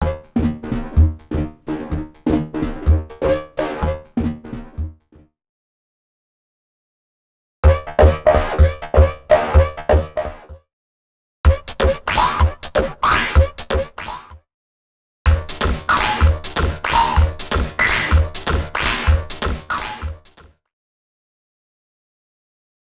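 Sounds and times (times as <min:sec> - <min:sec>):
electro music at 126 bpm: 0:00.0 - 0:04.9, 0:07.6 - 0:10.5, 0:11.5 - 0:14.2, 0:15.3 - 0:20.4.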